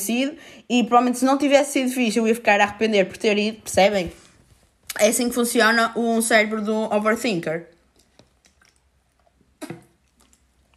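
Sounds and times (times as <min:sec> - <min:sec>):
speech: 0:00.0 - 0:04.2, 0:04.9 - 0:07.7
quiet mouth clicks and smacks: 0:04.8 - 0:05.2, 0:07.8 - 0:10.7
gulp of water being swallowed: 0:08.4 - 0:10.7.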